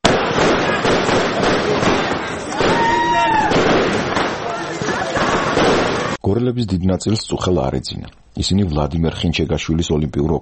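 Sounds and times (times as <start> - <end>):
fireworks crackling and banging at a street celebration: 0.0 - 6.2
speech: 6.3 - 10.3.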